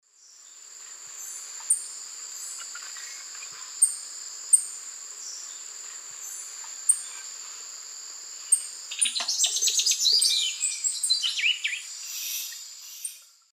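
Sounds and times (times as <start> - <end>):
Molothrus bonariensis song in South American eastern lowlands: 8.5 - 13.3.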